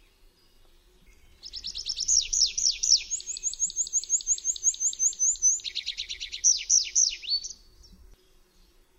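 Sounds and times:
tree pipit song: 1.6 - 7.6.

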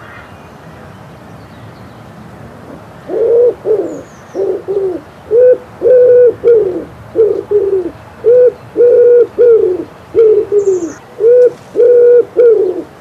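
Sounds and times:
common wood pigeon song: 2.6 - 12.9.

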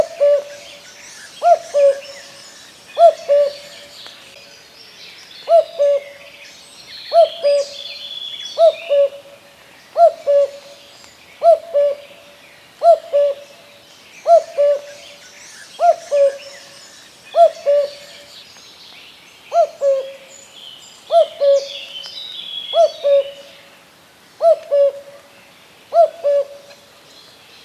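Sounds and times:
common cuckoo giving two-note cu-coo calls: 0.0 - 4.2, 5.4 - 6.3, 7.1 - 9.4, 10.0 - 10.8, 11.4 - 12.2, 12.8 - 13.5, 14.2 - 18.3, 19.5 - 20.3, 21.1 - 23.6, 24.4 - 25.2, 25.9 - 26.8
quieter birdsong: 0.0 - 27.6.

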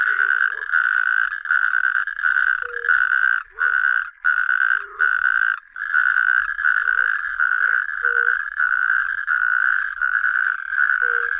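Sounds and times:
Natterjack toad calling with rattling trills: 0.0 - 11.3
faint low chirps: 11.0 - 11.3.

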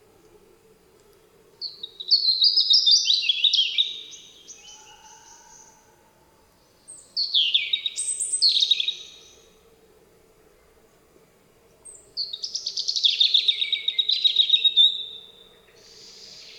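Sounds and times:
European robin singing: 1.6 - 5.8, 6.6 - 9.5, 11.8 - 16.5.

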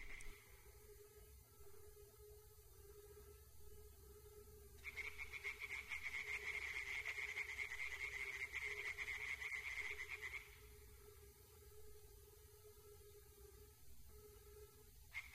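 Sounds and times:
chorus of tree frogs croaking and rattling in a forest: 0.0 - 0.5, 4.8 - 10.7, 15.1 - 15.3.

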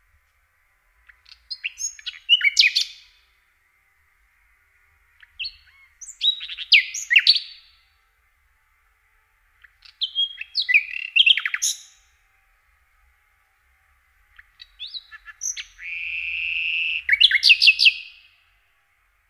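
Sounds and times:
common nightingale song of chirps and slurred whistles: 1.0 - 3.3, 5.1 - 8.0, 9.6 - 12.2, 14.3 - 18.4.

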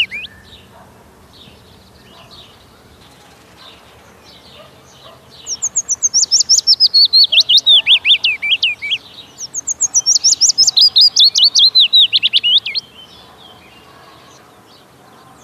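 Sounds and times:
willow warbler singing liquid runs of whistled notes: 0.0 - 15.4.

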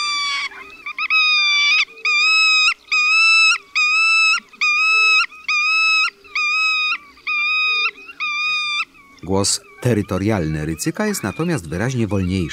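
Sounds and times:
black-tailed godwit wailing moaning alarm calls: 0.0 - 12.5
speech: 9.3 - 12.5.

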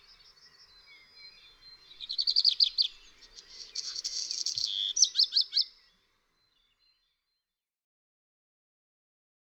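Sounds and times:
Black redstart singing: 0.0 - 7.5.

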